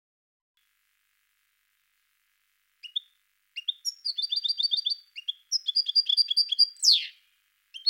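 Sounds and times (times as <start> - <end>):
European goldfinch song of bright tinkling twitters: 2.8 - 7.8.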